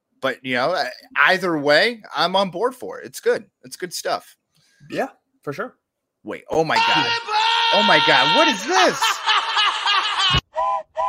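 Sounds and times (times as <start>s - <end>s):
speech: 0.2s - 9.3s
laughter: 7.8s - 10.4s
train whistle blowing: 10.5s - 11.0s.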